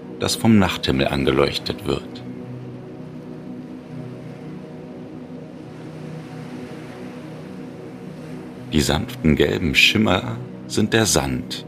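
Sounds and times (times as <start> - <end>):
rough sea on the coast of Normandy in northern France at night: 0.0 - 11.6
speech: 0.2 - 2.3, 8.7 - 11.6
low droning hum: 2.2 - 9.3.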